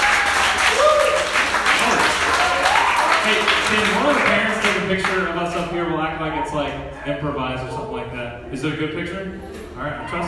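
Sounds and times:
audience applauding at the end of a presentation: 0.0 - 5.3
speech: 4.9 - 10.2.

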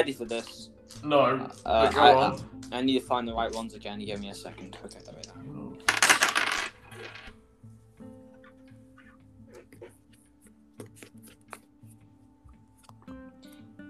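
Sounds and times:
speech: 0.0 - 5.6
dice shaken and tossed: 5.9 - 7.3.

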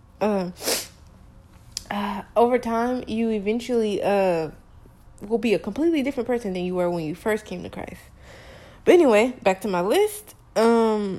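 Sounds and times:
speech: 0.2 - 0.7, 1.9 - 4.6, 5.2 - 11.1
sneeze: 0.5 - 1.0.

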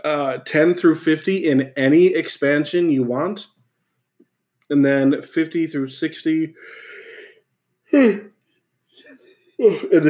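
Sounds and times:
speech: 0.0 - 3.5, 4.7 - 6.9, 7.9 - 8.3, 9.6 - 10.0
person yawning: 6.7 - 8.3.

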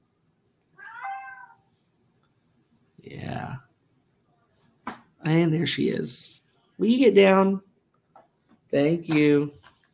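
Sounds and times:
female cat meowing: 0.8 - 1.7
speech: 5.2 - 7.7, 8.7 - 9.7.

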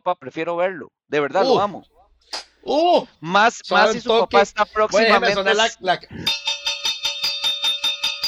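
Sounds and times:
speech: 0.0 - 6.5
boxing ring bell clanging: 6.2 - 8.2.

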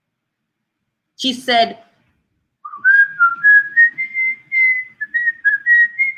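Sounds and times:
speech: 1.2 - 1.8
person whistling to imitate a whistle: 2.6 - 6.1.

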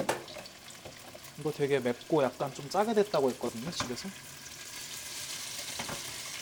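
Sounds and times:
chicken feet sizzling in a pan: 0.0 - 6.3
speech: 1.4 - 4.3.

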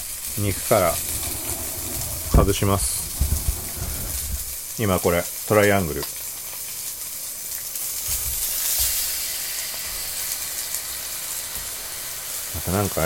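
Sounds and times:
speech: 0.4 - 1.1, 2.4 - 3.1, 4.8 - 6.2, 12.7 - 13.0
pork belly sizzling in a frying pan: 4.5 - 13.0.

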